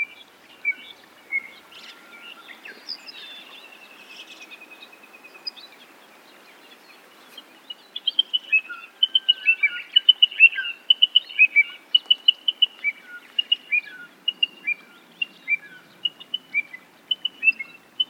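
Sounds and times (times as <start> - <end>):
little ringed plover calls: 0.0 - 5.9, 6.6 - 18.0.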